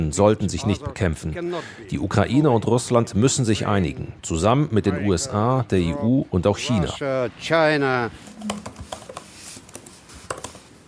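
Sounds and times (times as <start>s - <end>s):
speech: 0.0s - 9.0s
laptop clicks: 8.3s - 10.6s.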